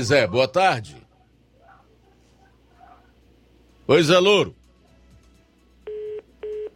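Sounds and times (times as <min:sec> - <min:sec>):
speech: 0:00.0 - 0:01.0, 0:03.9 - 0:04.6
phone line tone beeps after a dropped phone call: 0:05.9 - 0:06.7.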